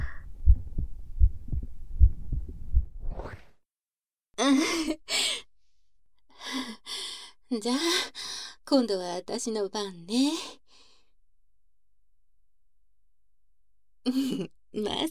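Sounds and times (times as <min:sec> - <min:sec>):
heartbeat heard with an ear pressed to a person's chest: 0:00.0 - 0:03.1
speech: 0:04.4 - 0:05.0, 0:07.6 - 0:10.6, 0:14.1 - 0:15.0.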